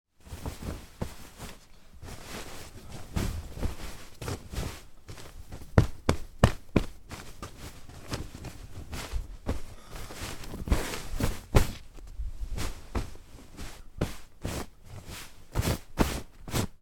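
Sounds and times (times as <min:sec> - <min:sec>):
bed being made with duvet and pillow: 0:00.2 - 0:16.7.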